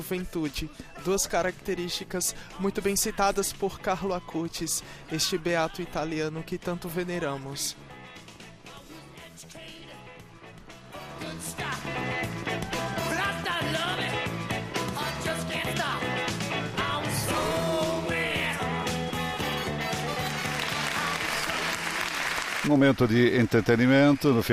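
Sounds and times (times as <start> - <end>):
speech: 0.0 - 7.8, 22.7 - 24.5
live music: 10.1 - 23.0
large crowd clapping in an open square: 19.6 - 24.5.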